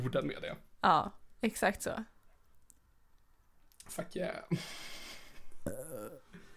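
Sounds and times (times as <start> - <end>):
speech: 0.0 - 2.1, 3.9 - 5.0, 5.6 - 6.4
short voiced burp: 5.6 - 6.3.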